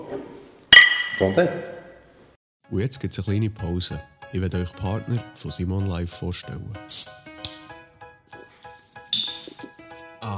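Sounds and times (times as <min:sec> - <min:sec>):
glasses clinking together in a toast: 0:00.8 - 0:01.4
speech: 0:01.2 - 0:01.8, 0:02.7 - 0:07.3.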